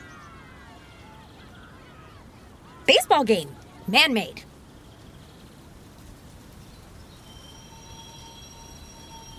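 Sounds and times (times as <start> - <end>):
speech: 2.9 - 4.5
subway train rumbling along the rails: 7.0 - 9.3
thin metallic wheel squeals of subway train: 7.2 - 9.3.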